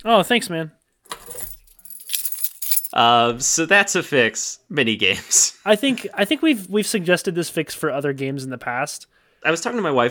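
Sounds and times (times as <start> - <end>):
speech: 0.0 - 0.8, 2.9 - 10.0
bunch of keys jangling: 1.1 - 3.0.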